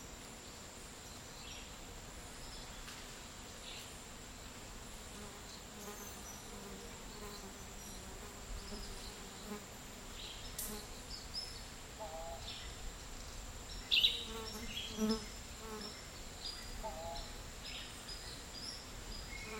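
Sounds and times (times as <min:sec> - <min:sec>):
dense insect hum and buzzing in a dry tropical forest: 0:00.0 - 0:19.5
faint bird calls: 0:12.0 - 0:12.7, 0:16.6 - 0:17.4.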